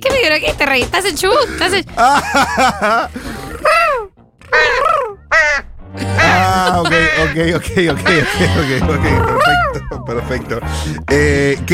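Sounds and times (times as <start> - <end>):
speech: 0.2 - 3.3, 6.0 - 11.7
laughter: 1.4 - 4.0, 6.0 - 11.0
bird giving harsh cawing cries: 4.4 - 7.4.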